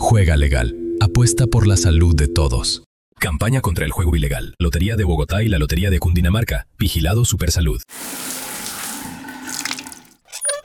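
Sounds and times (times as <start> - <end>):
speech: 0.1 - 8.5
water poured from buckets while bathing: 7.9 - 10.6.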